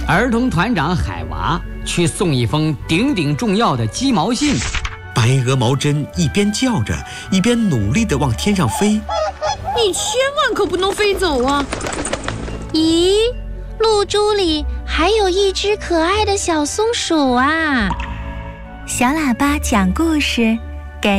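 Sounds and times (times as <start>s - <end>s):
speech: 0.1s - 12.0s, 12.7s - 18.1s, 18.9s - 21.1s
white goose honking while trying to fly: 8.4s - 10.3s.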